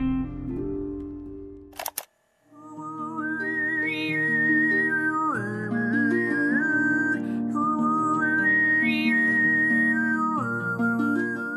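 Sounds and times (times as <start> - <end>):
short sharp click: 1.7 - 2.1
woman overtone singing with low drone and whistle-like upper melody: 2.5 - 11.5.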